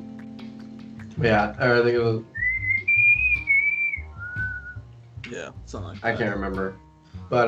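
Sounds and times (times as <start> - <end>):
speech: 1.2 - 2.3, 5.3 - 7.4
person whistling a tune imitating a movie signal: 2.3 - 4.8.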